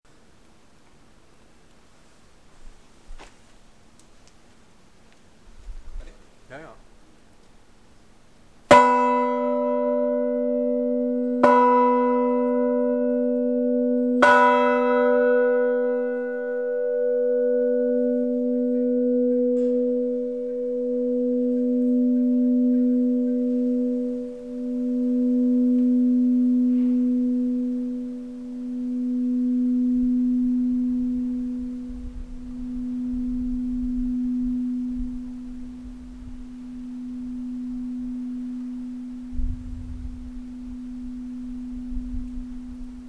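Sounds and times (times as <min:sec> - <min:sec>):
church bell: 0:08.7 - 0:43.0.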